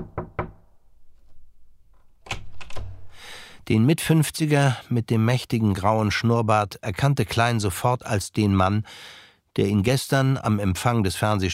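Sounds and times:
knocking on an office door: 0.0s - 0.6s
speech: 3.7s - 11.5s.

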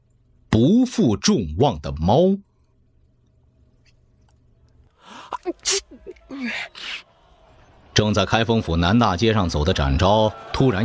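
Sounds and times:
speech: 0.6s - 2.5s, 5.4s - 7.1s, 8.0s - 10.8s
laughter: 5.1s - 7.4s
loud sneeze: 5.2s - 7.0s.

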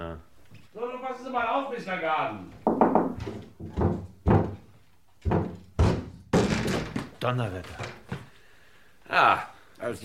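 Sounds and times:
speech: 0.0s - 2.6s, 7.2s - 8.0s, 9.1s - 10.0s
locked wardrobe door forced open from inside with thuds and knocks: 2.6s - 7.1s.

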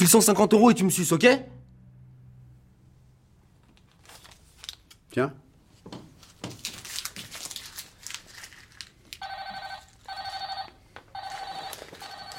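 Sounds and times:
speech: 0.0s - 1.6s, 5.2s - 5.4s
rustling and crinkling handling noises: 3.6s - 5.0s, 5.8s - 12.3s
phone ringtone: 9.2s - 12.3s.

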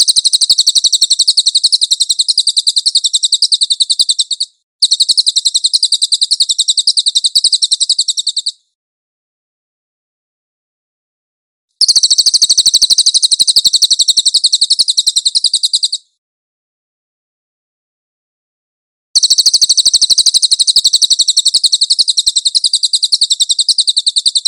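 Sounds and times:
cililin trilling: 0.0s - 8.6s, 11.8s - 16.0s, 19.2s - 24.4s.

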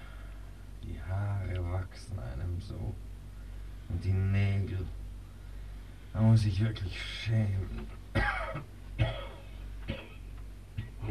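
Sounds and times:
steady low hum: 0.0s - 11.0s
speech: 1.1s - 3.1s, 3.9s - 5.0s, 6.1s - 9.2s
faint human coughing: 8.1s - 11.0s.

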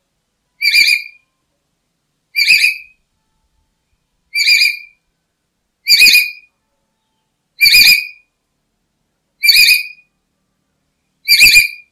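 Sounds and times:
black-capped lory calling with loud rasping whistled notes: 0.6s - 1.2s, 2.3s - 3.0s, 4.3s - 5.0s, 5.8s - 6.5s, 7.6s - 8.2s, 9.4s - 10.1s, 11.2s - 11.9s.

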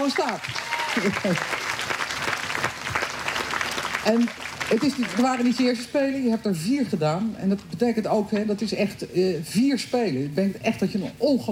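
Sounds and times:
speech: 0.0s - 2.0s, 4.0s - 11.5s
audience applause at a celebratory event welcoming an Olympic athlete: 0.0s - 5.8s.

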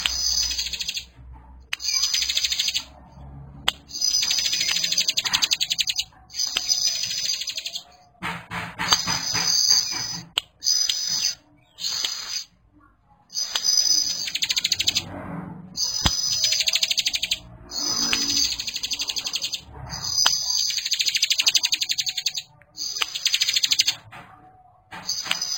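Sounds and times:
bar-winged prinia buzzy trilled song: 0.0s - 8.2s, 8.8s - 24.0s, 25.0s - 25.5s
bar-winged prinia sharp clicks: 3.6s - 12.5s, 13.3s - 15.0s, 15.8s - 24.0s, 24.9s - 25.5s.

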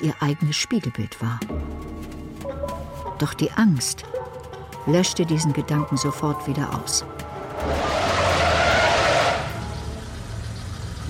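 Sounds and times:
speech: 0.0s - 1.7s, 3.2s - 4.2s, 4.8s - 7.9s
car braking hard and skidding to a stop with tires screeching: 7.4s - 9.8s.

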